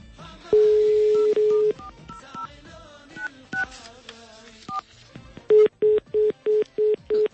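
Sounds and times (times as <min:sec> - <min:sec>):
quick telephone dialing beeps: 0:00.5 - 0:02.5, 0:05.5 - 0:07.3
steady telephone tone: 0:00.6 - 0:01.9, 0:05.5 - 0:07.3.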